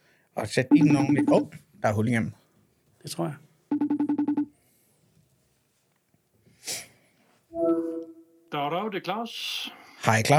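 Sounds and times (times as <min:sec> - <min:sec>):
speech: 0:00.4 - 0:02.4, 0:03.0 - 0:03.4, 0:08.6 - 0:10.3
steady telephone ringing tone: 0:03.7 - 0:04.5.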